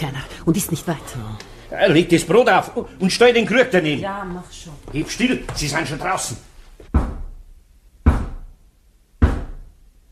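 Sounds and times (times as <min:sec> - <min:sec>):
speech: 0:00.0 - 0:06.5
heavy knocks on a door: 0:06.9 - 0:07.4, 0:08.0 - 0:08.5, 0:09.2 - 0:09.7.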